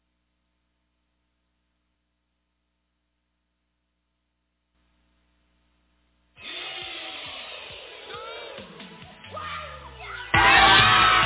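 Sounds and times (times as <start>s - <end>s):
crowd of excited children squealing and shouting while opening shoebox gifts: 6.5s - 11.2s.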